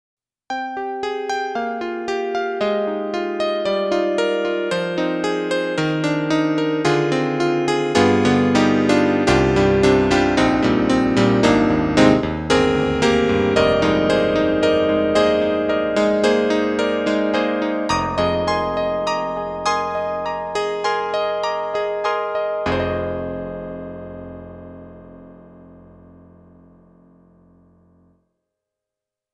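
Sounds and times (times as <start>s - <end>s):
Yamaha MU90 electric grand piano: 0.5s - 28.1s.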